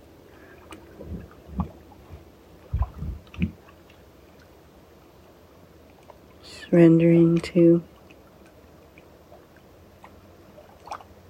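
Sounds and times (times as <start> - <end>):
faint breeze: 0.0 - 11.2
water lapping against a drifting boat: 0.0 - 11.2
speech: 6.7 - 7.9.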